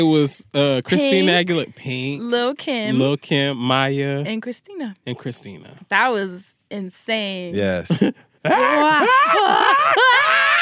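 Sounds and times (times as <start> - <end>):
laughter: 0.0 - 2.1, 2.9 - 4.2, 7.6 - 10.6
speech: 0.0 - 10.6
person screaming: 0.9 - 1.6, 8.5 - 10.6.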